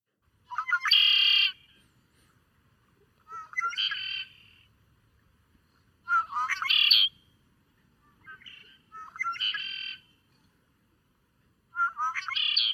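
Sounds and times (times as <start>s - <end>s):
male red-winged blackbird singing: 0.5s - 1.8s, 3.3s - 4.7s, 6.1s - 7.3s, 8.0s - 10.2s, 11.7s - 12.7s.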